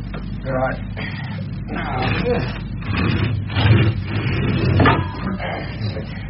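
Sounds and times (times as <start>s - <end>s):
speech: 0.4s - 4.1s
garage door rumbling and rattling as it is pulled shut: 2.2s - 5.4s.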